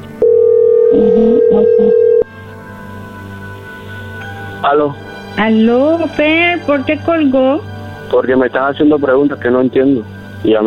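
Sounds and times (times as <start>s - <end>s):
telephone tone signalling an incoming call: 0.2s - 2.3s
speech: 0.9s - 2.1s, 4.6s - 10.6s.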